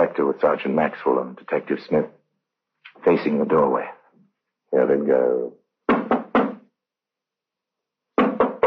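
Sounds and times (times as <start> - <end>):
speech: 0.1 - 2.2, 3.0 - 4.0, 4.7 - 6.0
police officers knocking firmly on a door: 5.9 - 6.7, 8.2 - 8.6.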